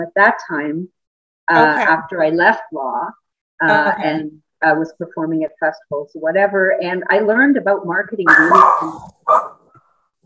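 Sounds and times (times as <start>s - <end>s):
speech: 0.0s - 9.5s
dog barking: 8.3s - 9.7s.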